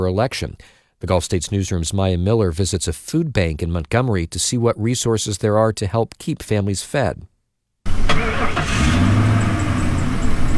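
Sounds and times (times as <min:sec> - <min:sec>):
speech: 0:00.0 - 0:07.3
car engines idling in a church parking lot: 0:07.9 - 0:10.5.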